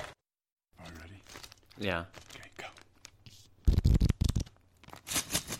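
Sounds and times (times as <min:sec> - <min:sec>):
new stickers and buttons crinkling and rustling being handled: 0:00.9 - 0:05.0
speech: 0:01.8 - 0:02.3.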